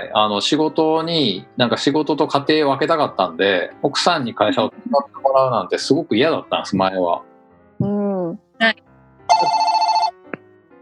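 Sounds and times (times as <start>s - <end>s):
speech: 0.0s - 8.8s
studio telephone ringing in an electronic trill: 9.3s - 10.2s.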